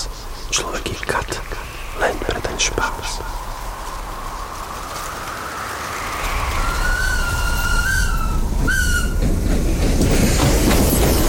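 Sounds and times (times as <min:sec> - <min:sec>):
train rolling into a station: 0:00.0 - 0:11.2.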